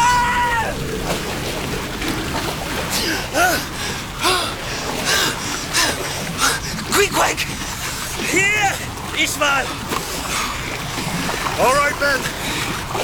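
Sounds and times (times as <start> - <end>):
several voices crying out and gasping: 0.0 - 0.9, 2.9 - 10.3, 11.4 - 12.4
wave swamping a boat, churning water crashing: 0.0 - 13.0.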